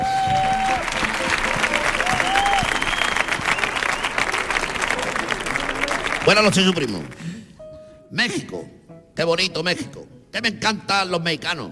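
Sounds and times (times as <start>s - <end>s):
large audience applause: 0.0s - 7.2s
faint whistles from the crowd: 2.3s - 4.2s
speech: 6.3s - 7.4s, 8.1s - 11.6s.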